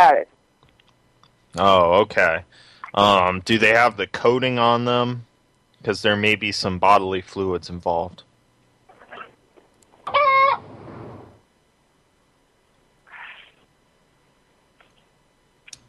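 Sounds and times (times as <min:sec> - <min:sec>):
speech: 0:00.0 - 0:00.4, 0:01.5 - 0:08.3
chicken squawk: 0:10.0 - 0:11.2, 0:13.1 - 0:13.6.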